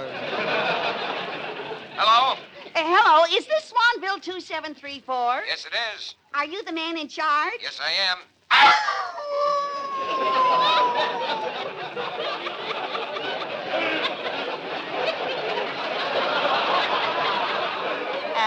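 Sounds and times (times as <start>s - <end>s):
laughter: 0.0s - 2.8s, 8.9s - 18.4s
speech: 2.0s - 9.0s
wolf from a newly arrived zoo pack howling: 8.5s - 11.9s
noisy yelping and chatter of a wolf pack at a zoo: 8.5s - 18.4s.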